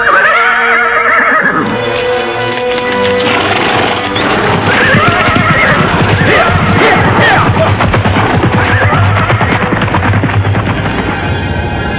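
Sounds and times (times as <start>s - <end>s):
horses neighing as riders spur them on: 0.0s - 1.8s, 4.2s - 10.3s
galloping hooves and clattering: 1.2s - 11.8s.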